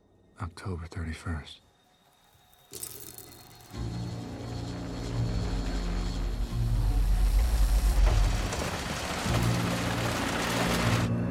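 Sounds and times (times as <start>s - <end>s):
speech: 0.4s - 1.7s, 2.7s - 3.0s, 3.7s - 4.1s
steady rain on city streets: 3.7s - 11.2s
deep continuous rumble: 3.8s - 11.2s.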